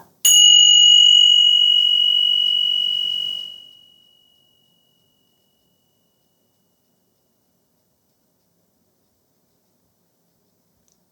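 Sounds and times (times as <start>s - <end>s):
mindfulness chime bell struck and ringing: 0.3s - 3.9s.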